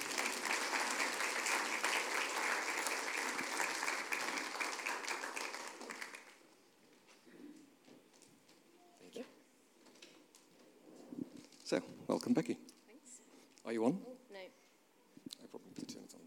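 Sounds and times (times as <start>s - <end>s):
crowd applauding with dense fast clapping: 0.0s - 6.4s
speech: 11.7s - 12.7s, 13.7s - 14.4s.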